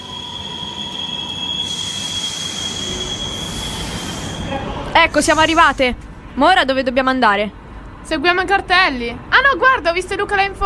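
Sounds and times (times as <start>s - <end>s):
metro train wheels squealing on the rails: 0.0s - 5.9s
metro train arriving with a steady loud roar: 0.0s - 6.7s
speech: 5.0s - 10.6s.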